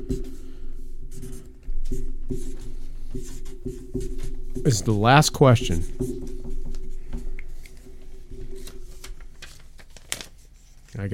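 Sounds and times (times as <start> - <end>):
pen writing on paper: 0.0 - 0.4, 1.1 - 9.0
speech: 4.6 - 6.3.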